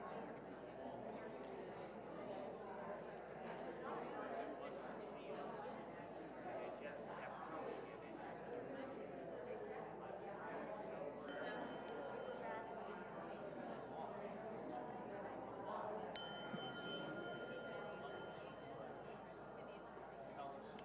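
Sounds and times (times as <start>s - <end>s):
murmur of many voices chatting in a room: 0.0s - 20.8s
small bell struck to call for quiet: 11.3s - 13.1s, 16.1s - 19.5s.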